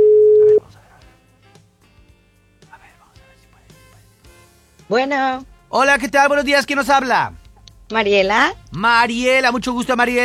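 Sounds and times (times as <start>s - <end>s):
telephone line tone while calling a radio contest listener: 0.0s - 0.6s
speech: 4.9s - 10.2s.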